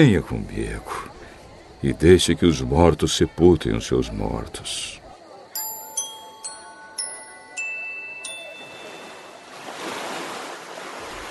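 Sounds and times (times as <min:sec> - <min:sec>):
speech: 0:00.0 - 0:01.1, 0:01.8 - 0:05.0
wind on a lake: 0:00.0 - 0:11.2
ringing chime-like tones: 0:05.6 - 0:09.8
stormy waves on a lake washing over a boat: 0:08.6 - 0:11.2.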